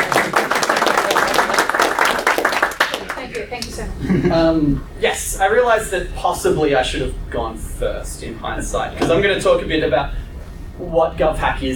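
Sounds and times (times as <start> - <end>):
audience at a talk in an office clapping: 0.0 - 3.8
speech: 4.0 - 10.2, 10.8 - 11.7.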